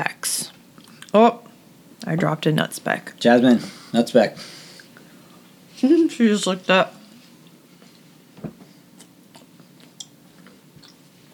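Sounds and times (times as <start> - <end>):
speech: 0.0 - 0.4, 1.2 - 1.4, 2.1 - 4.6, 5.8 - 7.0
steady low hum: 0.0 - 11.3
chewing dry crumbly protein brownie: 9.0 - 11.3.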